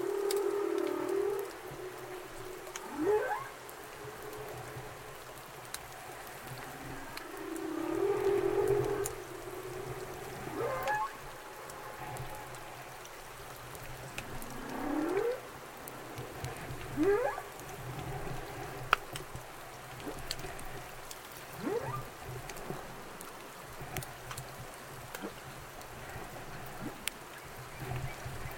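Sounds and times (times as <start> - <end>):
humpback whale calls underwater: 0.0 - 13.0, 14.2 - 18.6, 21.6 - 22.2
soft crackling hiss: 0.0 - 28.5.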